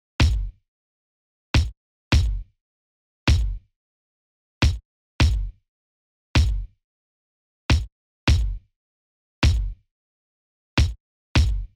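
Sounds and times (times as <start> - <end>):
kick drum: 0.2 - 0.6, 1.6 - 2.5, 3.3 - 3.6, 4.6 - 5.6, 6.4 - 6.7, 7.7 - 8.6, 9.4 - 9.8, 10.8 - 11.7.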